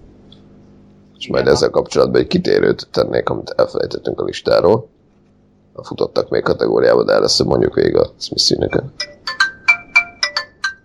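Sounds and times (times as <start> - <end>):
speech: 1.2 - 4.9, 5.8 - 9.4
mobile phone ringtone with electronic melody of bright beeps: 9.0 - 10.8.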